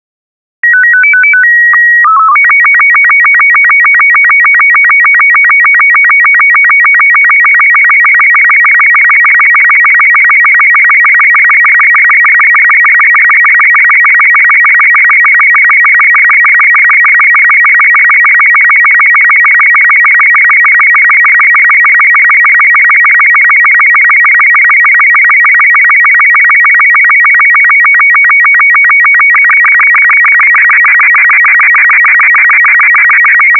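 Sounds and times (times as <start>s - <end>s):
SSTV Robot36 signal tones: 0.6s - 33.5s.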